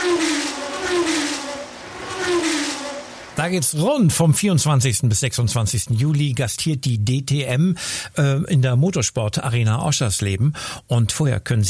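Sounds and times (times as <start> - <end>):
racing car engine revving: 0.0 - 3.8
speech: 3.4 - 11.6.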